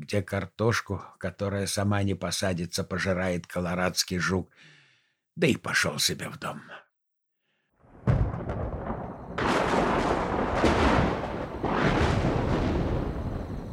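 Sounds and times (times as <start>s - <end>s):
speech: 0.1s - 4.8s, 5.4s - 6.8s
distant thunder rumbling: 7.9s - 13.7s.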